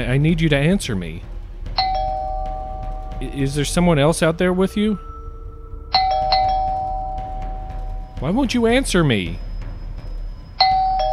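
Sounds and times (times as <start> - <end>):
speech: 0.0 - 1.3, 3.2 - 5.1, 8.2 - 9.4
electronic doorbell chiming: 1.8 - 3.7, 4.3 - 9.2, 10.6 - 11.1.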